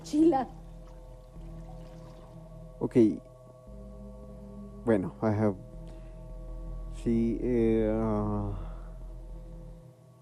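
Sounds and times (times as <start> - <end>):
low hum: 0.0 - 10.2
speech: 0.1 - 0.6, 2.8 - 3.3, 4.8 - 5.7, 7.0 - 8.6
holy water pouring and splashing: 0.7 - 2.4.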